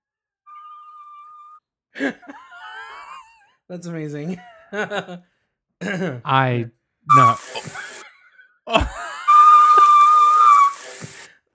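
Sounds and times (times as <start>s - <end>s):
speech: 2.0s - 2.4s, 3.7s - 7.8s
laughter: 2.0s - 3.4s, 4.2s - 5.2s, 7.1s - 11.3s
person whistling a long high note: 7.1s - 7.8s, 9.0s - 11.3s.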